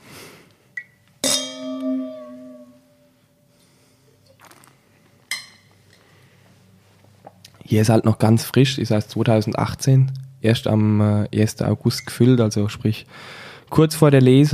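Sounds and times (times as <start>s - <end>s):
wine glasses clinking in a toast: 1.2s - 3.0s
speech: 7.7s - 14.5s.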